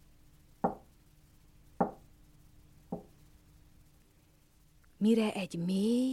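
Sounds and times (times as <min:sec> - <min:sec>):
knocks on a wooden door of a small house: 0:00.6 - 0:00.9, 0:01.8 - 0:02.0, 0:02.9 - 0:03.1
speech: 0:05.0 - 0:06.1.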